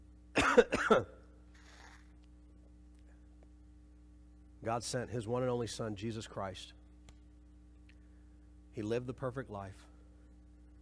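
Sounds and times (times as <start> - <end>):
faint hum: 0.0 - 10.8
harsh coughs: 0.4 - 1.3
speech: 0.6 - 1.2, 4.6 - 6.8, 8.8 - 9.9.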